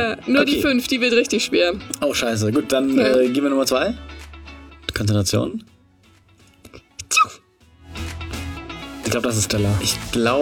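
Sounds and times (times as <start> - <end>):
speech: 0.0 - 4.2, 4.9 - 5.7, 9.1 - 10.4
person sneezing during a game session: 6.7 - 7.5.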